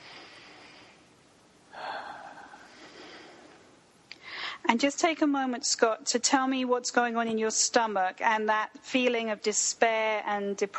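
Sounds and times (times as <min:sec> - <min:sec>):
comfortable breath during an EFT tapping session: 0:00.0 - 0:04.7
speech: 0:04.7 - 0:10.7.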